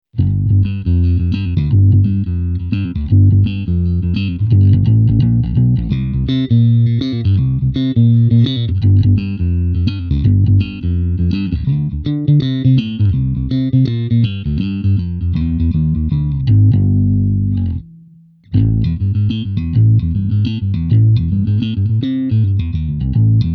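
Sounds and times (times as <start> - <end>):
bass guitar through amp simulation on a multi-effects pedal: 0.1 - 23.5.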